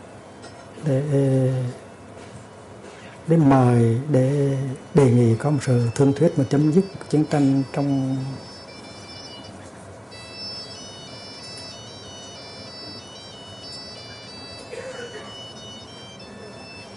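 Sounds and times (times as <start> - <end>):
dense noise: 0.0 - 16.9
speech: 0.8 - 1.8, 3.3 - 8.5
mobile phone ringtone melody: 4.0 - 16.9.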